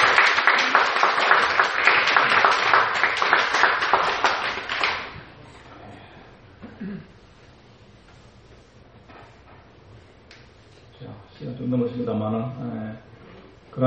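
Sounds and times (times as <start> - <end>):
crowd applauding: 0.0 - 5.3.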